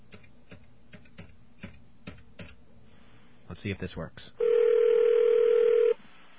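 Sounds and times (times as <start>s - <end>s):
speech: 3.6s - 4.4s
telephone dial tone: 4.4s - 6.0s.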